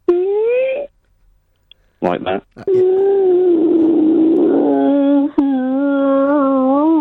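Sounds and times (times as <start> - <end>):
speech: 2.0 - 3.8
person imitating a wolf howl: 2.7 - 6.9.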